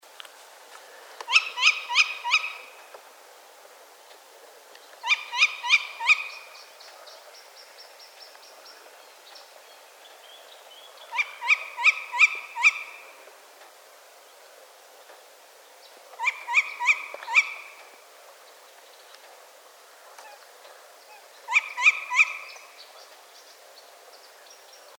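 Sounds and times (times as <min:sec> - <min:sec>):
Tawny owl Strix aluco calling: 0:01.2 - 0:02.9, 0:05.0 - 0:13.2, 0:15.8 - 0:19.2, 0:20.1 - 0:24.9.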